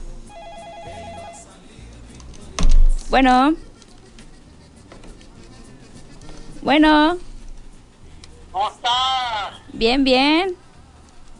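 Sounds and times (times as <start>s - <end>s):
low hum: 0.0s - 11.3s
telephone ringing in a radio studio booth: 0.3s - 1.6s
speech: 3.1s - 3.7s, 6.7s - 7.3s, 8.6s - 10.6s.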